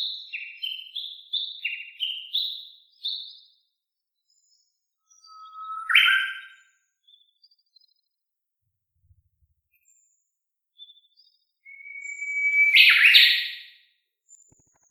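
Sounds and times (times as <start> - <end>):
Japanese bush warbler valley-crossing call: 5.1 - 6.6, 11.7 - 13.4.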